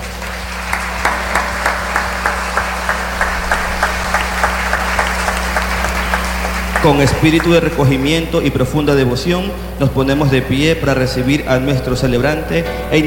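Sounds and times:
audience at a Mass clapping in rhythmic unison to welcome a bishop: 0.0s - 8.6s
constant low hum from the sound system: 0.0s - 13.0s
speech: 6.8s - 13.0s.

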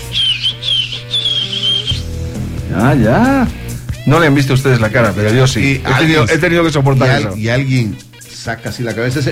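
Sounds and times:
person whistling loudly imitating a man's whistle: 0.0s - 2.2s
speech: 2.8s - 9.3s.

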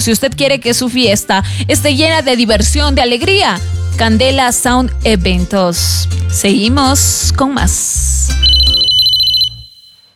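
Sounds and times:
speech: 0.0s - 8.5s
telephone ringtone: 8.4s - 10.1s.

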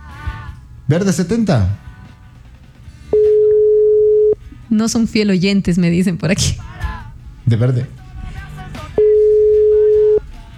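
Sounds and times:
speech: 0.9s - 1.9s, 4.7s - 6.6s, 7.5s - 8.0s
telephone ringing unanswered on a call-in phone line: 3.1s - 4.4s, 8.9s - 10.3s.

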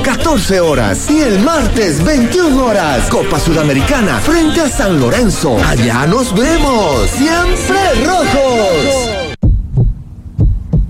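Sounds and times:
speech: 0.1s - 9.2s
tonal music: 1.1s - 9.4s
heartbeat thumps: 9.4s - 10.8s.

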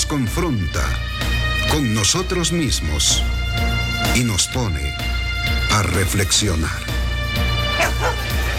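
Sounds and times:
speech: 0.1s - 3.4s, 4.2s - 6.9s
blood-soaked dog barking: 7.7s - 8.4s.

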